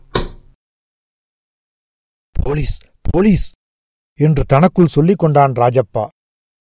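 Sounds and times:
knock on a house's front door: 0:00.1 - 0:00.5
speech: 0:02.5 - 0:03.6, 0:04.2 - 0:06.2.

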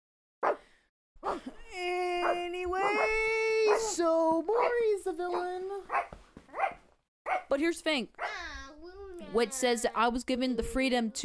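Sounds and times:
dog barking: 0:00.4 - 0:00.6, 0:01.2 - 0:01.5, 0:02.2 - 0:03.9, 0:05.3 - 0:07.5, 0:08.2 - 0:08.5
speech: 0:03.8 - 0:06.2, 0:07.5 - 0:11.2.

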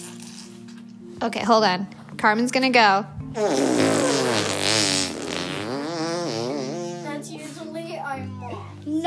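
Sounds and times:
speech: 0:01.2 - 0:04.0
child blowing a raspberry with the lips imitating a fart: 0:03.4 - 0:07.1.

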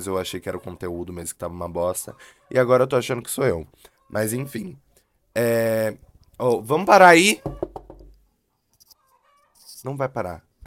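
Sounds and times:
speech: 0:00.0 - 0:07.8, 0:09.8 - 0:10.5
chicken clucking: 0:01.8 - 0:05.0, 0:07.4 - 0:09.8.

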